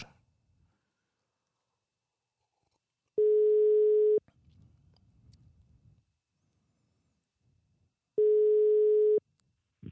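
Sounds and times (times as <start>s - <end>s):
electronic ringback tones through a phone line while placing a call: 3.2s - 4.2s, 8.2s - 9.2s.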